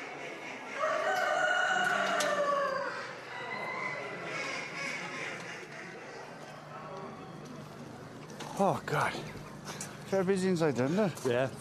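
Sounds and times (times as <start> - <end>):
fowl calling and clucking at a poultry show: 0.0 - 6.4
rooster crowing in a cage at a poultry show: 0.8 - 4.3
speech: 8.6 - 9.4, 10.1 - 11.6.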